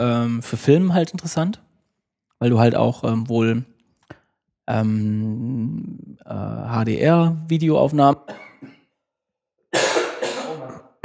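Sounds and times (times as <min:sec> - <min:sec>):
speech: 0:00.0 - 0:01.7, 0:02.4 - 0:03.7, 0:04.7 - 0:08.8
person with a lingering cough coughing: 0:08.3 - 0:08.9, 0:09.8 - 0:11.0.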